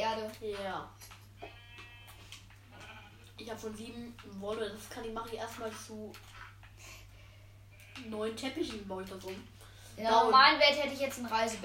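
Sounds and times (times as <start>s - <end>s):
steady low electrical hum: 0.0s - 11.6s
speech: 0.3s - 1.1s, 3.4s - 6.9s, 8.0s - 11.6s
sheep bleating: 1.4s - 3.3s.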